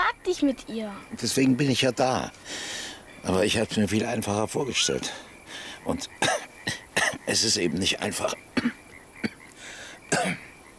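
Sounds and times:
speech: 0.3 - 8.8, 10.1 - 10.4
old man coughing: 6.2 - 7.2, 8.6 - 9.4, 10.1 - 10.5.

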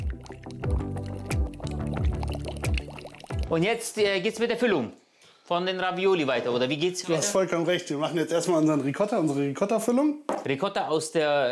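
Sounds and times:
apple wine reduction bubbling in a pot on the stove: 0.0 - 3.5
speech: 3.5 - 11.4.

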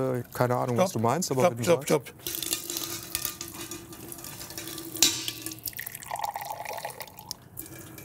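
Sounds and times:
speech: 0.0 - 2.5
unpasteurized apple drink poured into a glass: 5.6 - 8.0.

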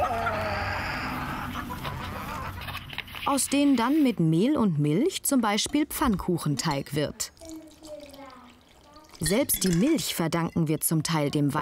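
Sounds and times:
several hens clucking: 0.0 - 3.2
speech: 3.3 - 7.4, 9.2 - 11.6.

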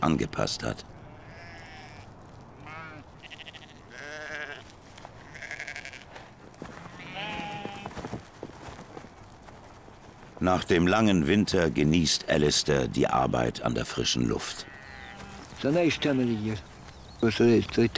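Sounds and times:
speech: 0.0 - 1.0, 10.4 - 14.7, 15.6 - 17.9
sheep of an ancient hardy domestic breed bleating in the Scottish Highlands: 0.9 - 8.0, 14.4 - 16.6.

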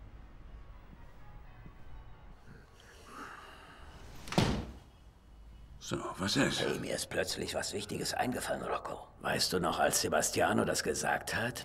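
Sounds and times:
balcony door shutting with a firm thud: 4.2 - 4.8
speech: 5.9 - 11.6.

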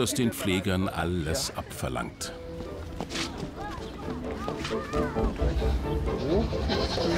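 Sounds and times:
speech: 0.0 - 2.4
outdoor noise: 0.0 - 7.1
shuffling movement: 2.6 - 5.4
goats bleating while being herded: 6.0 - 7.1.

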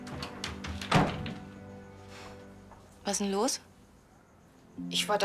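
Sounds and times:
door swinging shut with a solid thunk: 0.1 - 1.5
speech: 3.1 - 3.7, 4.8 - 5.2.

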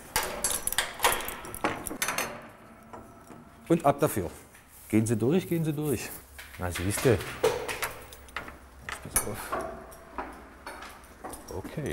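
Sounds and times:
latches and wood clanking and rattling: 0.0 - 3.7, 6.5 - 11.9
stable doors being opened to let the animals out: 0.0 - 4.5, 6.2 - 11.9
speech: 3.7 - 7.5, 9.2 - 9.6, 11.6 - 11.9.

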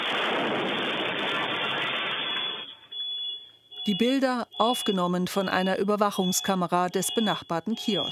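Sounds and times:
explosive device detonating outside shisha bar: 0.0 - 2.9
speech: 3.9 - 8.1.

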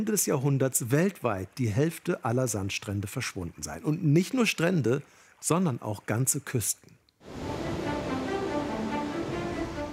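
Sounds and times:
speech: 0.0 - 7.4
ocean waves rolling onto a sandy beach: 7.2 - 9.9.

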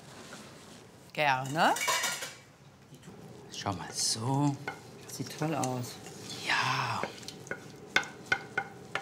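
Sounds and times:
speech: 1.2 - 2.0, 3.6 - 6.0
wooden spoon pressing and stirring tomato sauce in a pan: 4.6 - 8.9.

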